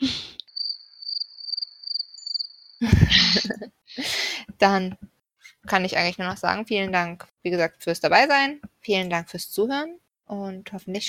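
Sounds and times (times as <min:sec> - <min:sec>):
steady high cricket chirping: 0:00.5 - 0:02.8
laughter: 0:02.8 - 0:03.7
speech: 0:02.8 - 0:05.0, 0:05.7 - 0:11.0.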